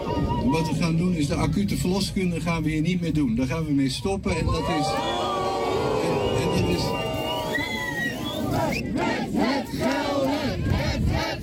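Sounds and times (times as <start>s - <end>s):
speech: 0.4s - 5.3s, 8.7s - 9.9s
crowd loudly booing and chanting at a protest against a hospital ward closing: 4.5s - 11.4s.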